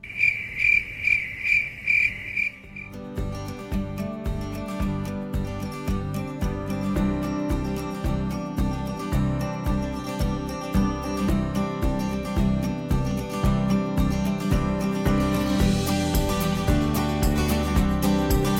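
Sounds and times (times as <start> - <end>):
crickets chirping: 0.0 - 3.1
rhythmic music with a thumping beat: 3.0 - 18.5.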